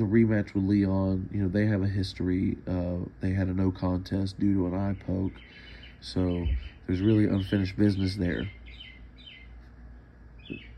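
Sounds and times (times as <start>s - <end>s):
speech: 0.0s - 8.6s, 10.5s - 10.7s
bird chirping outdoors at night: 4.0s - 10.7s.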